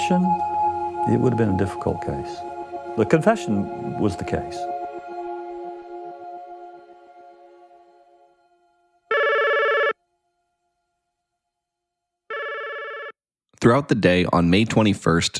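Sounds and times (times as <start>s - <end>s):
fading musical tone: 0.0s - 10.4s
speech: 0.1s - 4.7s, 13.6s - 15.3s
telephone ringing in electronic bursts: 9.1s - 10.0s, 12.3s - 13.2s.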